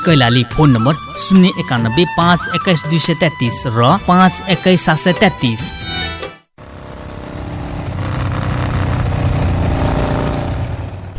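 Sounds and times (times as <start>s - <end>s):
speech: 0.0s - 6.1s
new motorbike engine running: 6.6s - 11.1s.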